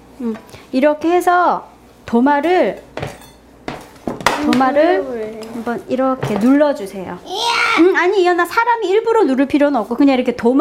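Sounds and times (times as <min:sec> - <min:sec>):
speech: 0:00.2 - 0:02.9, 0:04.5 - 0:10.5
dishware clinking: 0:02.8 - 0:04.5
plate of bread set down during sandwich making: 0:02.9 - 0:04.8.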